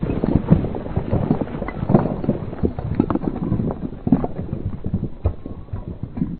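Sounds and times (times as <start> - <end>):
rocks collapsing: 0.0 - 6.3.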